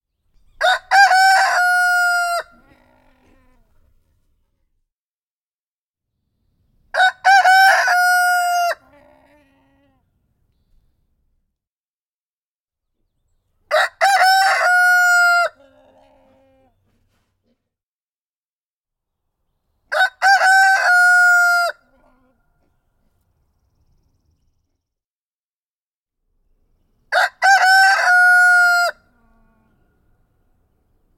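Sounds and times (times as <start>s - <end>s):
rooster crowing: 0.6s - 3.4s, 6.9s - 9.7s, 13.7s - 16.7s, 19.9s - 22.4s, 27.1s - 29.8s.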